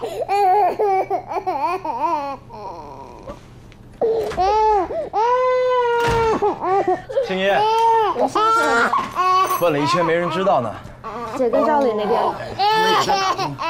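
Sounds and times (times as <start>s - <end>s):
baby crying: 0.0s - 3.4s, 4.0s - 13.6s
speech: 7.3s - 13.6s.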